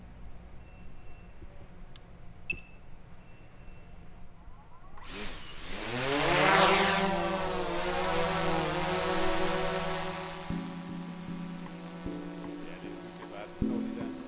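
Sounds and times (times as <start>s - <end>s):
drone flying overhead with buzzing propeller whine: 5.0s - 14.2s.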